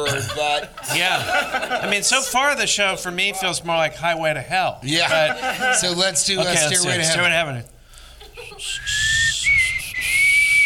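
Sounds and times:
laughter: 0.0s - 2.6s, 4.9s - 7.1s, 8.2s - 8.9s
speech: 0.1s - 7.8s
breathy attempted whistling mostly blown air: 8.6s - 10.6s.

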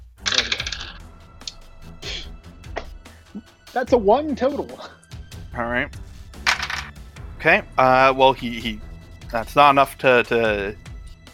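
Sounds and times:
dice clattering falling off a table onto a hard surface: 0.2s - 1.0s, 6.5s - 6.9s
speech: 3.4s - 5.0s, 5.6s - 6.0s, 7.4s - 10.8s.

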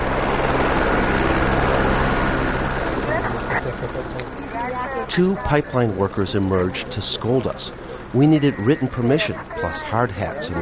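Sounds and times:
helicopter rotor thudding: 0.0s - 10.5s
laughter: 2.8s - 10.5s
speech: 5.2s - 10.5s.

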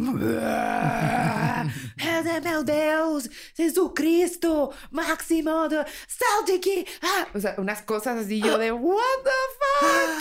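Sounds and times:
speech: 0.0s - 0.8s, 2.4s - 10.1s
person imitating guttural demonic screaming aboard a ship: 0.0s - 1.7s.

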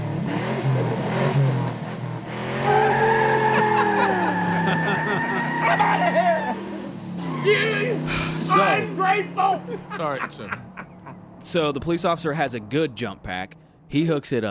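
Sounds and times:
car engine revving: 0.0s - 14.0s
car tire squeal while peeling out after a jump-start: 2.3s - 9.8s
laughter: 3.0s - 6.6s, 8.0s - 11.2s
speech: 9.2s - 10.6s, 11.4s - 14.4s.

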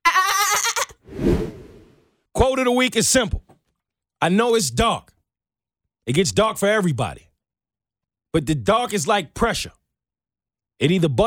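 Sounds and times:
goat bleat sound effect: 0.0s - 0.9s
speech: 2.5s - 3.6s, 4.2s - 5.1s, 6.1s - 7.3s, 8.3s - 9.8s, 10.8s - 11.2s.

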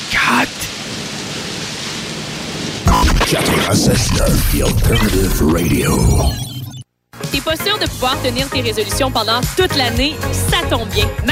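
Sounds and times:
steady dense rain pouring: 0.0s - 6.3s
heavier rumbling burst: 0.8s - 6.8s
speech: 3.3s - 6.5s, 7.3s - 11.3s.

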